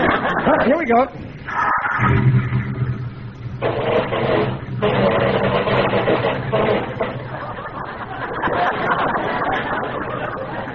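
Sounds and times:
laughter: 0:00.0 - 0:01.8, 0:06.6 - 0:10.7
speech: 0:00.5 - 0:02.4
new car engine starting after turning on the ignition: 0:01.4 - 0:08.6.

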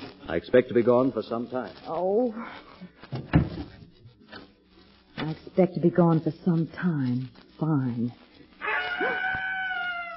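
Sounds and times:
speech: 0:00.3 - 0:03.1, 0:05.3 - 0:08.2
screech owl quavering cry: 0:08.6 - 0:10.1.

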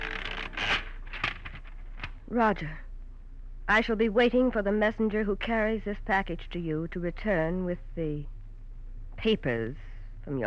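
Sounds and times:
typewriter ratcheting bursts: 0:00.0 - 0:01.6
speech: 0:02.3 - 0:02.8, 0:03.7 - 0:08.3, 0:09.2 - 0:10.4.

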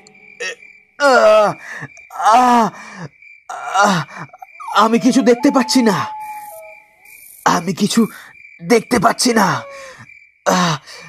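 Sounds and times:
speech: 0:00.4 - 0:03.1, 0:03.8 - 0:06.2, 0:07.6 - 0:09.7, 0:10.4 - 0:11.0
wounded man panting and gasping for breath: 0:02.7 - 0:03.1, 0:03.9 - 0:04.5, 0:09.7 - 0:11.0.

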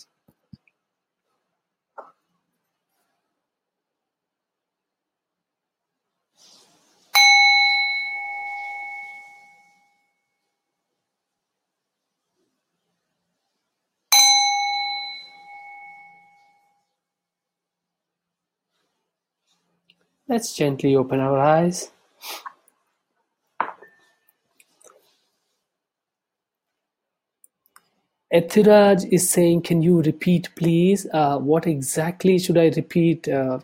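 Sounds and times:
faint small noises: 0:00.0 - 0:14.2, 0:15.2 - 0:33.6
meditation bell ringing: 0:07.1 - 0:10.4, 0:14.1 - 0:16.8
speech: 0:20.3 - 0:22.5, 0:28.3 - 0:33.6.

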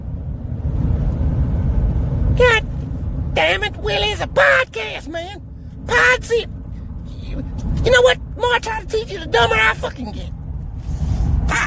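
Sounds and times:
car driving down a street heard from inside: 0:00.0 - 0:11.6
car engine and road noise low rumble: 0:00.0 - 0:11.6
speech: 0:03.4 - 0:06.6, 0:07.4 - 0:10.4.

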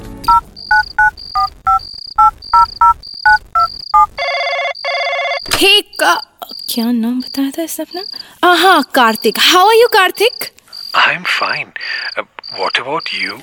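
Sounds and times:
electronic phone ringing tone with beeps, trilling ring and warbling burst: 0:00.3 - 0:05.5
speech: 0:06.8 - 0:13.4.

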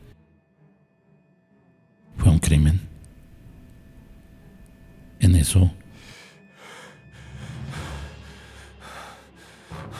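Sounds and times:
speech: 0:05.4 - 0:05.8
heavy agitated breathing with gasps and snorting breaths: 0:05.9 - 0:09.9.

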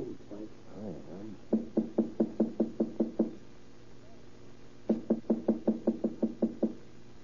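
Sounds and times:
firm rapid knocking on a door: 0:01.5 - 0:03.4, 0:04.9 - 0:06.8.

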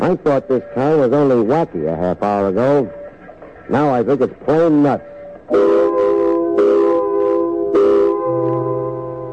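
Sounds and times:
speech: 0:00.0 - 0:03.0, 0:03.7 - 0:06.0
multi-toned factory quitting-time whistle blaring at a plant: 0:05.5 - 0:09.3.

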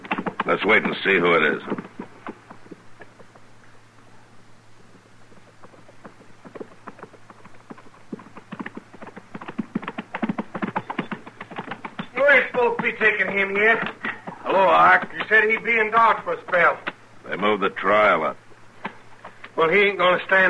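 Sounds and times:
horse hoofbeats galloping across dusty ground: 0:00.0 - 0:03.8, 0:04.8 - 0:17.0
speech: 0:00.4 - 0:01.8, 0:13.0 - 0:14.0, 0:14.6 - 0:18.4, 0:19.6 - 0:20.4.

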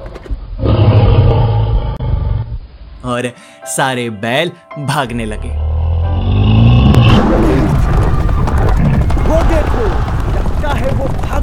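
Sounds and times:
loud deep lion roar with rumbling growl: 0:00.6 - 0:02.6, 0:05.5 - 0:08.1
speech: 0:03.0 - 0:05.7, 0:09.3 - 0:11.4.

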